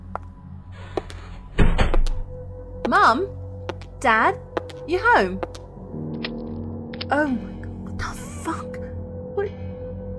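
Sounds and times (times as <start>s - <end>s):
front door shutting with a thud: 1.5s - 2.2s
speech: 2.9s - 3.4s, 4.0s - 5.5s, 7.1s - 7.5s.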